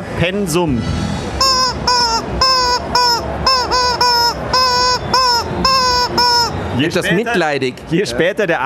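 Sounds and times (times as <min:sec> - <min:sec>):
speech: 0:00.2 - 0:01.1, 0:06.8 - 0:08.6
voice imitating a toucan's cry: 0:01.4 - 0:06.6.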